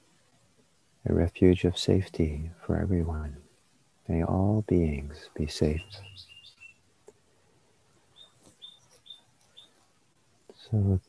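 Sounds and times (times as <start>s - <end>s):
speech: 1.0s - 3.4s, 4.1s - 6.3s, 10.7s - 11.0s
birds chirping outside: 4.2s - 6.9s, 8.0s - 9.9s.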